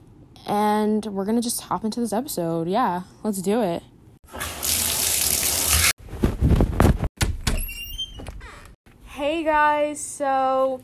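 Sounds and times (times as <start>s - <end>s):
speech: 0.5s - 3.9s, 9.4s - 10.8s
shower water running: 4.3s - 6.0s
door-like thud: 7.2s - 8.4s.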